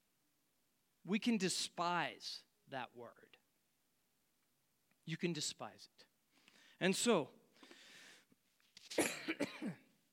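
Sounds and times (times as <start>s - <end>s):
speech: 1.0s - 3.4s, 5.1s - 6.1s, 6.8s - 7.4s, 8.9s - 9.8s
man coughing at a microphone: 8.9s - 9.9s.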